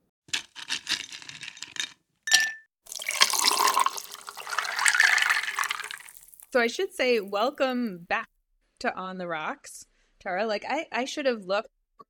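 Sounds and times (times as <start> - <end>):
glass clinks: 2.3 - 6.4
drink pouring into a glass: 2.9 - 7.8
speech: 6.5 - 11.8.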